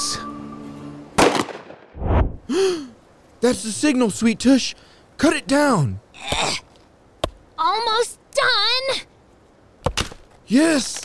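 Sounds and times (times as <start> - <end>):
single gunshot fired straight up into the air: 1.2 - 2.3
speech: 2.5 - 6.6, 7.7 - 9.1, 10.5 - 11.0.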